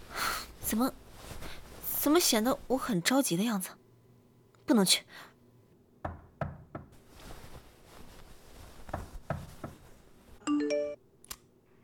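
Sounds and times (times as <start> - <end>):
speech: 0.7 - 1.4, 2.0 - 3.8, 4.7 - 5.3
firm knocking on a door: 6.0 - 7.0, 8.9 - 9.8
short electronic ringtone-like melody: 10.5 - 11.0.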